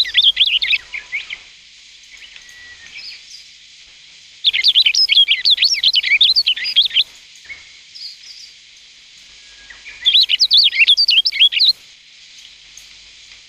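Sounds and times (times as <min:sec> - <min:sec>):
rustic bunting song: 0:00.0 - 0:03.6, 0:04.4 - 0:08.6, 0:09.3 - 0:11.8.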